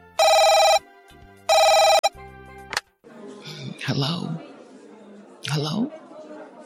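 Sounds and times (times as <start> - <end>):
telephone ringing with a loud electronic trill: 0.0 - 0.8, 1.5 - 2.1
speech: 3.9 - 4.5, 5.4 - 6.0.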